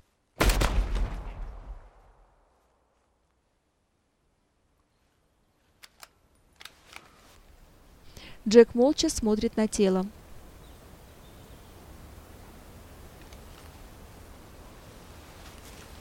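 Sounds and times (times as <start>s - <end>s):
gunshot in a forest: 0.4s - 2.6s
faint clicks and rustles: 4.8s - 7.6s, 13.1s - 13.9s, 15.0s - 16.0s
speech: 8.4s - 10.2s.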